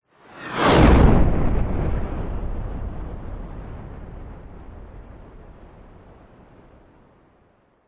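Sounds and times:
fighter jet airplane passing by low at extreme fast speed: 0:00.2 - 0:05.8.

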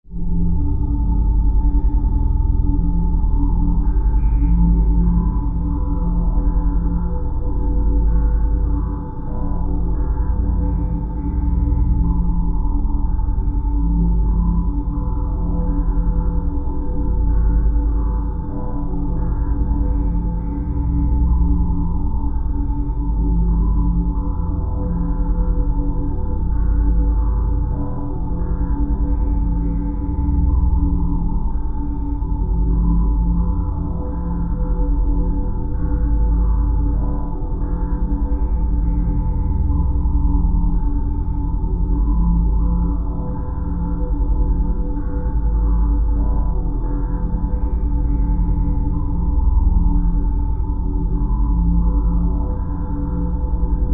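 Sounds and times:
horror drone atmosphere sound design: 0:00.0 - 0:53.9.

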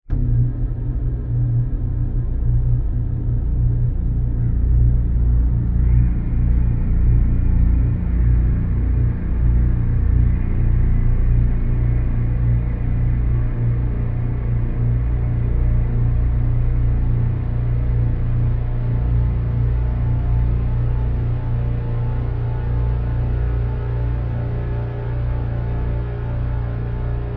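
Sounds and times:
dark fearful horror atmosphere: 0:00.1 - 0:27.3.

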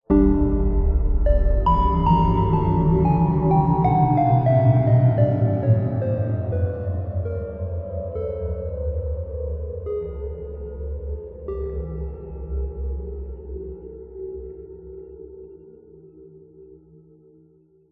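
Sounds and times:
scary chime: 0:00.1 - 0:10.4
horror ghostly ominous haunted musical riff: 0:00.1 - 0:12.4.

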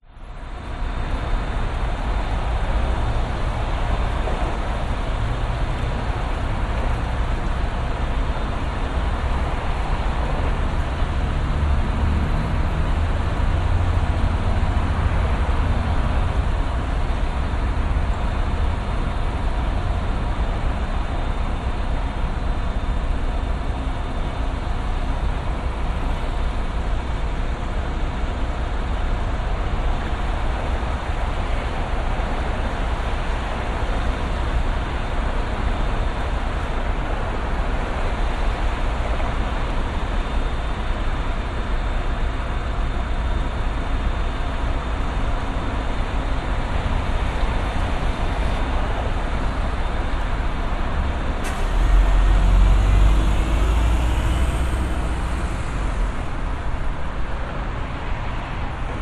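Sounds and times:
busy city vehicle traffic in Brisbane North Quay: 0:00.0 - 0:59.0
distant siren in Brisbane North Quay: 0:51.4 - 0:57.4.

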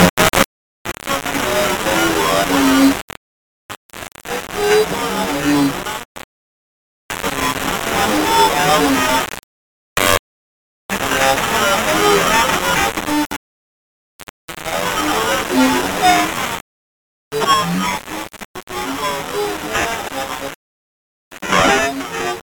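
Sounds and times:
radio static glitches: 0:00.0 - 0:03.2, 0:03.8 - 0:06.3, 0:07.1 - 0:09.4, 0:10.0 - 0:10.2, 0:10.9 - 0:13.4, 0:14.2 - 0:16.6, 0:17.4 - 0:20.6, 0:21.3 - 0:22.4.

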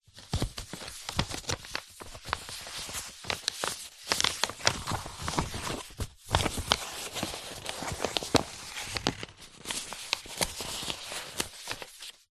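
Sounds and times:
A4 paper sheets handled flat with gentle rustle: 0:00.0 - 0:12.3.

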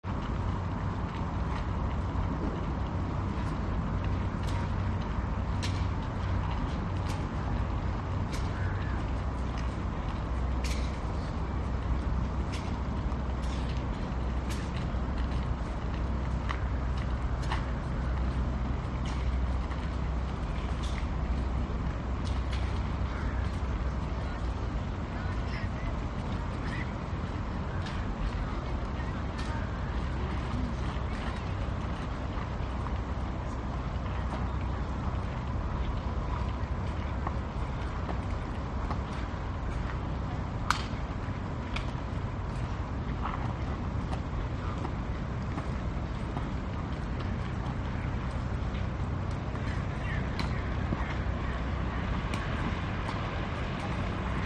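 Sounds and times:
plane overhead: 0:00.0 - 0:54.4
footsteps on Stockholm waterfront light promenade walkway: 0:00.1 - 0:54.4.

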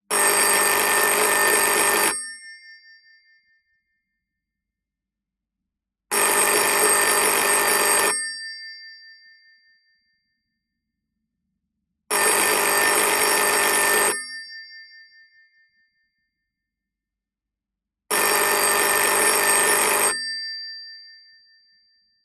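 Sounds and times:
1980 Siemens Masterset 111 telephone with US standard ringing: 0:00.1 - 0:02.2, 0:06.1 - 0:08.3, 0:12.1 - 0:14.3, 0:18.1 - 0:20.4.

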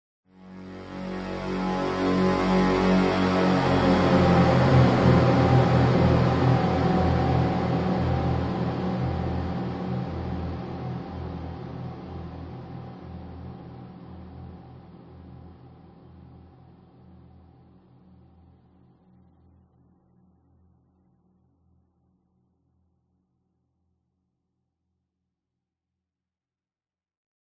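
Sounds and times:
horror dark synth swell with evil descending buzzing: 0:00.6 - 0:11.2.

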